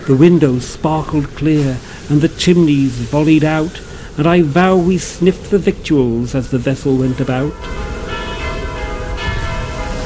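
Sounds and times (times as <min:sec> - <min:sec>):
speech: 0:00.1 - 0:07.9
church bells ringing in a dense sustained peal: 0:02.2 - 0:10.0.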